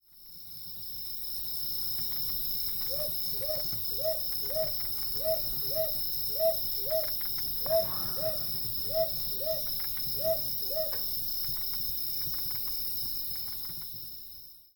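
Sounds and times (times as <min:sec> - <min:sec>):
chorus of buzzing insects: 0:00.4 - 0:14.4
northern boobook hooting: 0:02.9 - 0:11.2.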